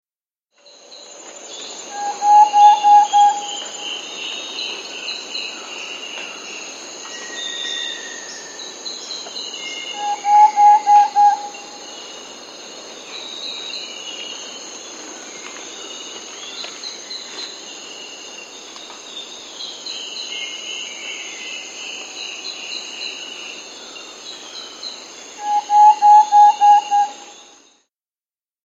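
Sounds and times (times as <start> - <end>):
Thrush-Like Antpitta calling in South America: 1.9 - 3.7, 9.9 - 11.8, 25.4 - 27.3.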